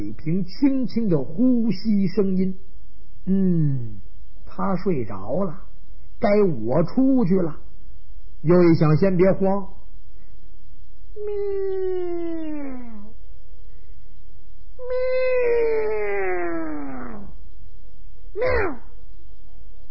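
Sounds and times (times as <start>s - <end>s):
speech: 0.2s - 4.0s, 4.6s - 7.6s, 8.4s - 9.8s, 11.2s - 12.8s
person imitating a cat meowing while hiding under a bed at night: 11.2s - 13.2s, 14.8s - 17.4s, 18.4s - 19.0s.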